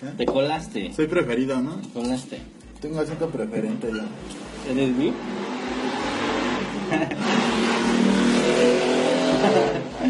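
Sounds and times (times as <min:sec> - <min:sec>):
speech: 0:00.0 - 0:05.4, 0:06.9 - 0:07.7, 0:08.6 - 0:10.0
motorcycle engine revving: 0:04.2 - 0:10.0
laughter: 0:06.8 - 0:07.4, 0:09.2 - 0:10.0.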